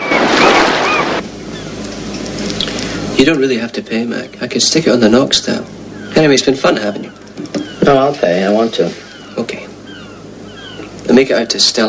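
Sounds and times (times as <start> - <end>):
sea waves washing ashore: 0.0 - 1.2
speech: 3.2 - 7.2, 7.9 - 9.6, 11.1 - 11.8.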